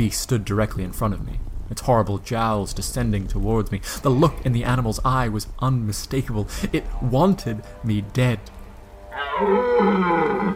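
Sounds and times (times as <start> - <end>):
speech: 0.0 - 8.6, 9.4 - 10.5
deep creature roar with low growling harmonics: 9.1 - 10.5.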